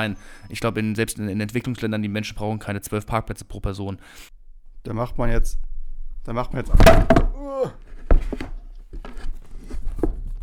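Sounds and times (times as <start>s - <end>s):
speech: 0.0s - 9.3s
microphone toppling over with a clatter and thump: 6.6s - 7.4s
scattered soft knocks and handling bumps: 6.7s - 10.4s
person calling out: 7.3s - 7.8s.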